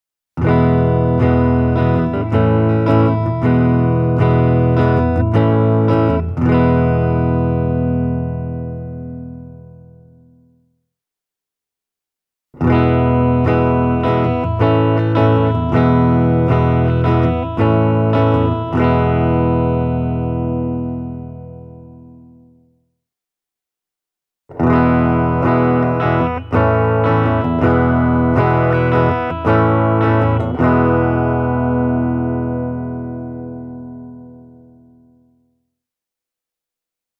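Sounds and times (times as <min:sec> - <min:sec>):
Epiphone Limited Edition Korina Flying V electric guitar played clean: 0:00.4 - 0:10.6, 0:12.6 - 0:22.8, 0:24.5 - 0:35.4.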